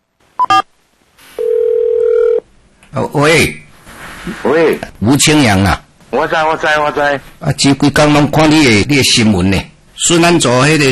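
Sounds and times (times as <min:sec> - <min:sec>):
phone dialing tones: 0:01.4 - 0:02.4
speech: 0:03.0 - 0:03.6, 0:04.2 - 0:10.9.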